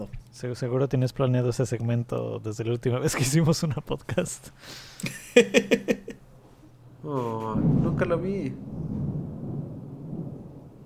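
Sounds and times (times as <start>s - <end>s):
speech: 0.0s - 6.1s, 7.0s - 9.0s
laughter: 5.0s - 6.2s
deep rolling thunder before a storm: 7.5s - 10.8s.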